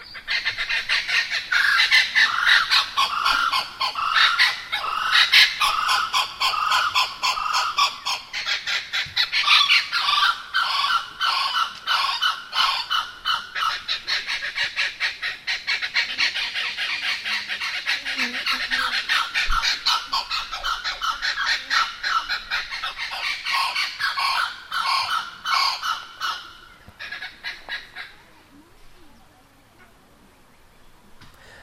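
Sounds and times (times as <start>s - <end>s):
blue-winged kookaburra calling: 0.0s - 28.9s.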